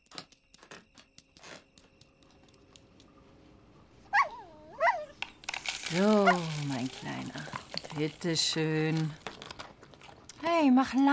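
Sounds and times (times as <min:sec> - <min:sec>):
dog whimpering waiting to be fed: 0:04.1 - 0:05.1
speech: 0:05.9 - 0:09.2, 0:10.4 - 0:11.1.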